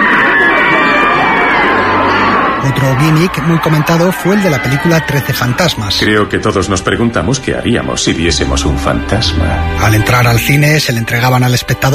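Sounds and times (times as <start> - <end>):
cinema audience screaming: 0.0 - 6.2
announcement urging audience to scream: 1.6 - 11.9
speech: 2.8 - 11.9.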